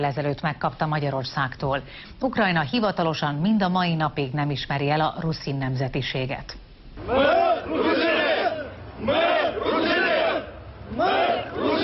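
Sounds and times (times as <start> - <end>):
speech: 0.0 - 8.2, 9.0 - 9.7
large crowd chanting a slogan in unison: 7.0 - 11.8.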